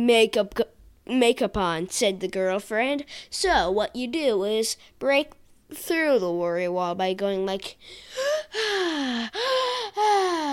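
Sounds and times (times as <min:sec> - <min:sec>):
speech: 0:00.0 - 0:10.5
person taking deep gasping inhalations: 0:07.8 - 0:10.5.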